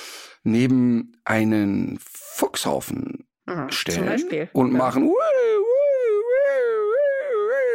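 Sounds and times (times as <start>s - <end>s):
speech: 0.4s - 5.4s
person imitating a dog's alarm howl: 5.0s - 7.7s.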